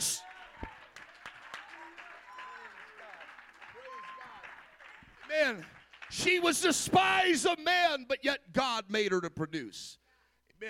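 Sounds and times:
audience clapping: 0.0 - 6.8
speech: 5.4 - 10.0.

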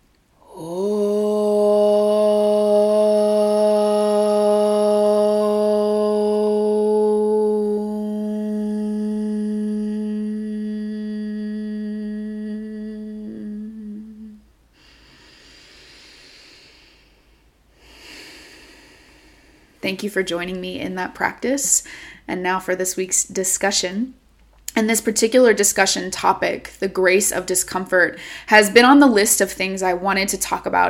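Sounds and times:
person chanting a long Om: 0.4 - 14.5
deep breath in: 14.8 - 19.8, 21.8 - 22.3, 28.2 - 28.5
speech: 19.9 - 24.2, 24.8 - 30.8.

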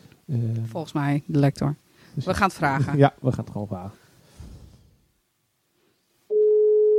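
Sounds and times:
speech: 0.3 - 4.0
ringback tone of an outgoing telephone call: 6.3 - 6.9.

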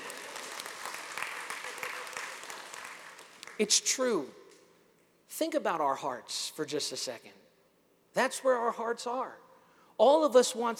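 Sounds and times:
crowd clapping: 0.0 - 3.8
speech: 3.6 - 4.4, 5.4 - 7.4, 8.2 - 9.4, 10.0 - 10.7.

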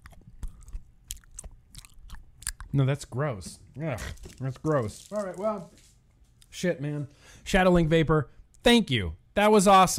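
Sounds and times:
crunchy chewing of a snack against the microphone: 0.0 - 2.8, 3.9 - 5.4
speech: 2.7 - 5.9, 6.6 - 9.9.

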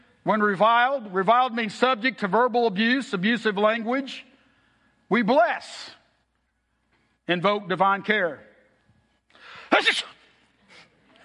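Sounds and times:
speech: 0.2 - 4.3, 5.1 - 6.0, 7.3 - 8.5, 9.7 - 10.2
breathy intake and breath: 4.3 - 5.1, 9.3 - 9.7, 10.6 - 11.2
person faking a sneeze: 9.4 - 11.0.

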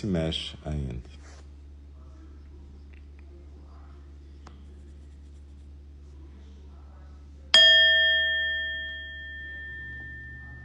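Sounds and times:
speech: 0.0 - 1.2
quiet hum: 0.0 - 10.6
meditation bell ringing: 7.6 - 10.6.

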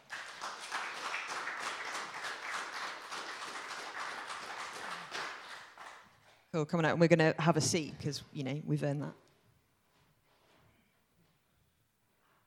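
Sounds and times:
audience applause: 0.0 - 6.1
speech: 6.5 - 9.3.

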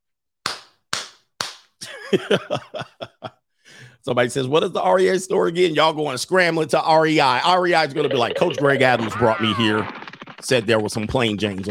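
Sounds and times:
hand claps: 0.4 - 1.8
laughter: 1.8 - 3.3
speech: 2.1 - 11.6
burst of overlapping voice-like sounds: 7.4 - 10.6.

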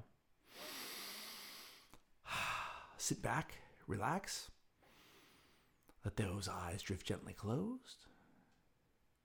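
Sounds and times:
deep breath in: 0.5 - 3.0
speech: 3.0 - 4.6, 6.0 - 8.2.

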